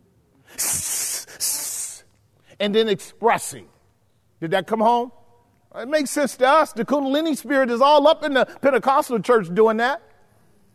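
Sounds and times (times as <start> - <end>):
person imitating a snake's hiss: 0.5 - 2.1
speech: 2.6 - 3.8, 4.4 - 10.1.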